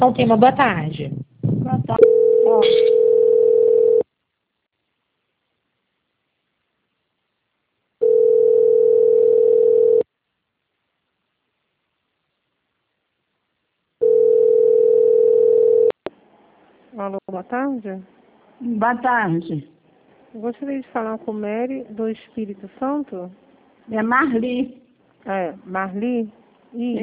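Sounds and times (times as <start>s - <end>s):
speech: 0.0s - 1.3s, 1.9s - 3.1s, 17.0s - 27.0s
telephone ringing tone while a call is transferred: 2.0s - 4.1s, 8.0s - 10.1s, 14.0s - 16.0s.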